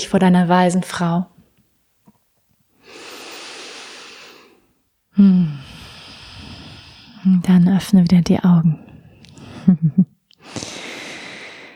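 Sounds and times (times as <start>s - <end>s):
speech: 0.0s - 1.3s, 5.2s - 5.8s, 7.2s - 8.9s, 9.6s - 10.8s
deep breath in and out: 2.8s - 4.8s, 5.4s - 7.2s, 10.4s - 11.7s.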